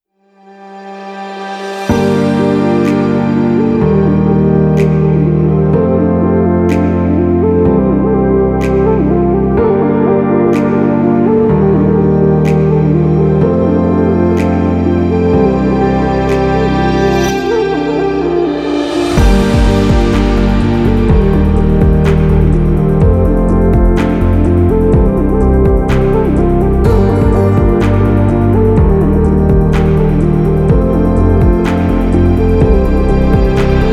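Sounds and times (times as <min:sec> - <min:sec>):
Arabian inspiring music: 0:00.4 - 0:33.9.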